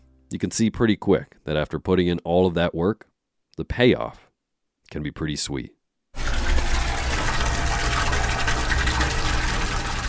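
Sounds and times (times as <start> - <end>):
speech: 0.3 - 4.2, 4.9 - 5.8
maple sap gushing from collection lines into a cement tank at a sugar house: 6.2 - 10.0.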